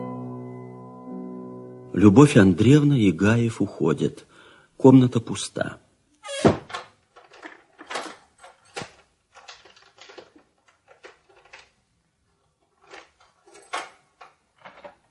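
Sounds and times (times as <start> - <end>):
speech: 2.0 - 4.3, 4.8 - 5.8
outer door thudding shut: 6.2 - 7.0
key turning in the lock of outer doors: 6.7 - 11.8, 12.7 - 15.1.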